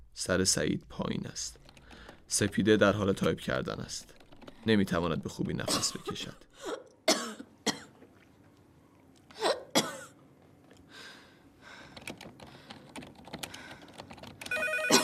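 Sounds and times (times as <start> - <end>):
speech: 0.2 - 1.6, 2.3 - 6.8
telephone ringing: 14.5 - 15.0.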